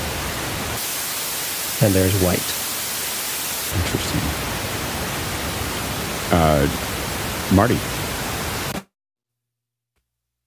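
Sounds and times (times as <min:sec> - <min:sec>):
loud steady pink noise test signal: 0:00.0 - 0:08.9
speech: 0:01.8 - 0:02.6, 0:03.7 - 0:04.5, 0:06.3 - 0:06.9, 0:07.5 - 0:08.0.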